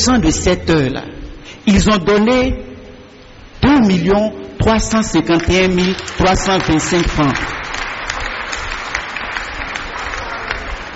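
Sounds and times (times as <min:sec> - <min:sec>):
speech: 0:00.0 - 0:02.7, 0:03.7 - 0:07.6
crowd applauding at a church gathering: 0:05.4 - 0:10.9.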